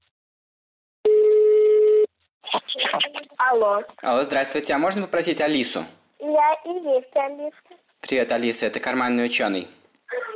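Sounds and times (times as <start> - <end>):
telephone ringing tone on a call: 1.1 - 2.1
speech: 3.6 - 9.8.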